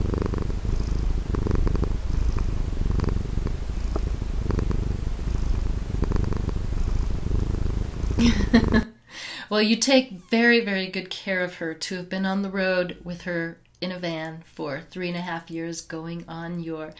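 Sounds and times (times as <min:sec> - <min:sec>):
cat purring: 0:00.0 - 0:08.9
speech: 0:09.5 - 0:16.9.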